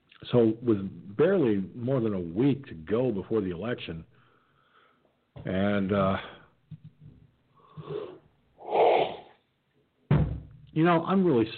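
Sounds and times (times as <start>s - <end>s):
speech: 0.2s - 4.1s, 5.4s - 6.4s, 10.8s - 11.5s
person yawning: 7.8s - 9.3s.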